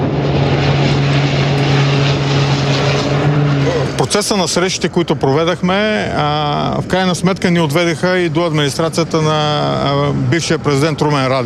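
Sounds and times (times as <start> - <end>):
small propeller firefighting airplane engine droning: 0.0 - 11.4
speech: 4.0 - 11.4.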